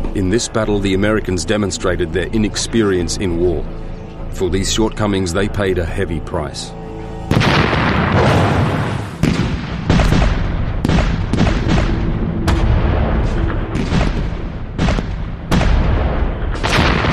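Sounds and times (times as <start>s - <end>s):
speech: 0.1s - 6.8s
heavy artillery bombardment of German defensive positions along a canal: 7.3s - 17.1s.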